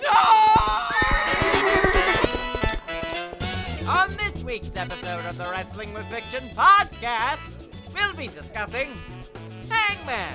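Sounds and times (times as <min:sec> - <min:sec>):
rapid clip-clop of horse hooves: 0:00.5 - 0:03.7
horse whinnying loudly: 0:01.0 - 0:02.3
speech: 0:04.6 - 0:10.3.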